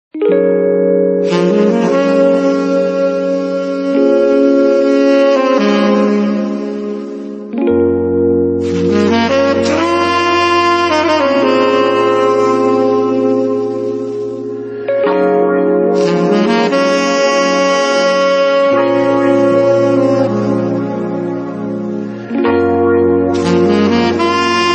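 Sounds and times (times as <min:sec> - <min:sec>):
romantic saxophone: 0:00.2 - 0:15.1, 0:15.8 - 0:24.7.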